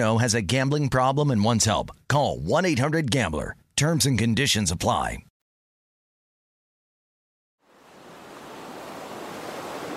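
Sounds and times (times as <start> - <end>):
speech: 0.0 - 5.3
Pacific Ocean surf breaking off the coast of California: 7.6 - 9.9.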